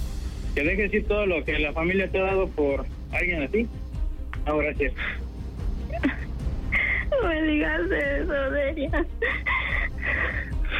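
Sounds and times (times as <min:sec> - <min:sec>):
speech: 0:00.6 - 0:03.8, 0:04.4 - 0:05.2, 0:07.2 - 0:10.5
person crying with wailing sobs: 0:05.9 - 0:10.7.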